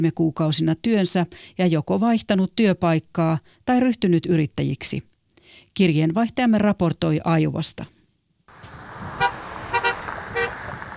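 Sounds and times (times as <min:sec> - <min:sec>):
speech: 0:00.0 - 0:08.0
steady rumble of traffic: 0:08.5 - 0:10.9
passing car horns honking in short bursts: 0:08.6 - 0:10.9.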